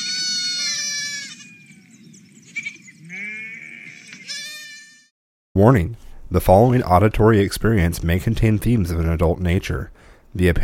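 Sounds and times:
sheep bleating: 0.0 - 1.6, 3.1 - 5.1
speech: 5.6 - 10.6.

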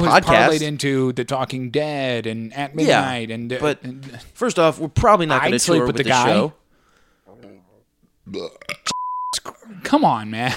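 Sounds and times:
speech: 0.0 - 6.6, 8.3 - 10.5
rough throat noises: 7.3 - 9.7
low gurgling burp: 8.3 - 9.0.

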